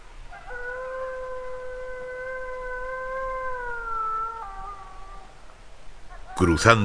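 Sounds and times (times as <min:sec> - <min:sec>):
wolf howling: 0:00.3 - 0:05.5
speech: 0:06.4 - 0:06.8.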